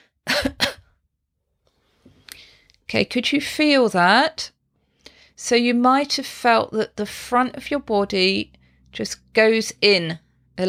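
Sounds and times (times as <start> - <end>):
gentle cough: 0.2 - 1.0
speech: 2.9 - 4.6, 5.4 - 10.6.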